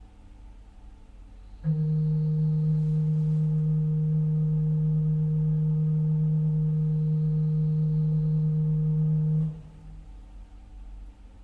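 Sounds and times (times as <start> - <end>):
pipe organ pedal flute stop note: 1.6 - 10.2.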